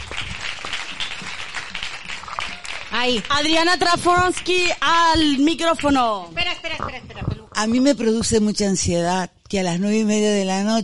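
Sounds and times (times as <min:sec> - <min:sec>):
crowd applauding: 0:00.0 - 0:06.3
speech: 0:02.9 - 0:10.8.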